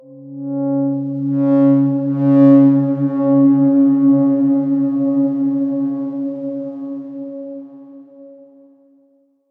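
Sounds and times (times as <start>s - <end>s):
synth note C sharp five: 0.0s - 8.5s.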